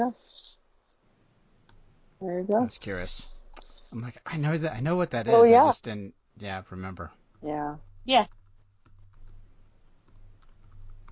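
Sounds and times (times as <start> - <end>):
speech: 0.0 - 0.4, 2.2 - 8.4
low steady hum: 0.0 - 11.1
typing on a computer keyboard: 10.1 - 11.1.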